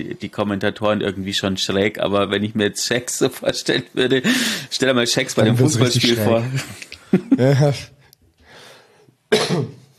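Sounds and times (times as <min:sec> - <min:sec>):
speech: 0:00.0 - 0:08.0
breathy inhale: 0:04.2 - 0:04.7, 0:08.4 - 0:09.1
coughing into a microphone: 0:09.3 - 0:09.9.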